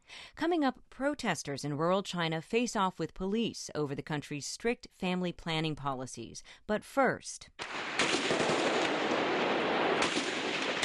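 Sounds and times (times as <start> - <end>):
speech: 0.4 - 8.2
gunfire at a refugee camp during fighting between army and militants: 7.6 - 10.8.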